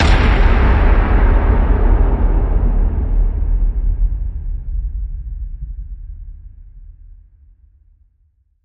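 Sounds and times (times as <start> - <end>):
big breaking hit: 0.0 - 5.6.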